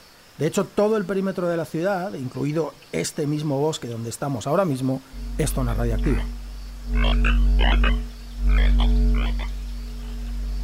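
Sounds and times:
speech: 0.4 - 8.0
frog croaking in a forest in the Chernobyl exclusion zone around Pripyat: 5.0 - 10.6
steady low hum: 5.0 - 10.6.

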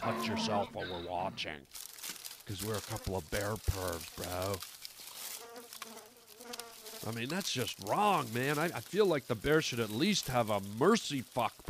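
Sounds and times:
speech: 0.0 - 1.9, 2.5 - 4.8, 7.0 - 11.6
faint rustling: 1.6 - 11.6
flies buzzing amid leaves and blueberries: 2.5 - 11.1.

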